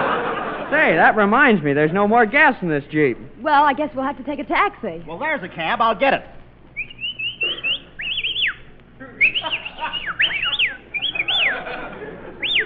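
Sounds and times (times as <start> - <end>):
laughter: 0.0 - 1.1, 9.1 - 12.6
soft hiss: 0.0 - 12.6
speech: 0.8 - 6.4
shrill human whistling: 6.8 - 11.7, 12.4 - 12.6.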